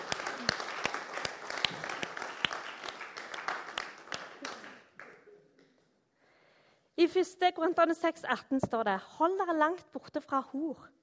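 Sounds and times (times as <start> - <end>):
audience applause for a demonstration: 0.0 - 5.2
speech: 7.0 - 11.0.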